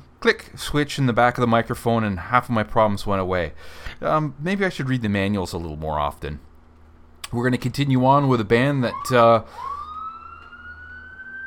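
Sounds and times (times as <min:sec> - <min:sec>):
speech: 0:00.2 - 0:06.5, 0:07.3 - 0:09.7
emergency vehicle siren wailing on the street: 0:08.7 - 0:11.4.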